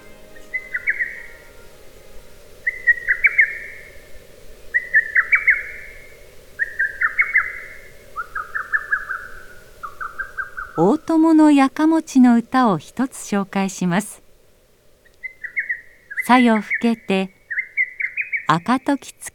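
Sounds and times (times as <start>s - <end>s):
lesser cuckoo calling: 0.0s - 11.4s, 15.0s - 19.1s
steady low hum: 0.0s - 19.3s
speech: 11.1s - 14.2s, 16.3s - 17.4s, 18.5s - 19.3s.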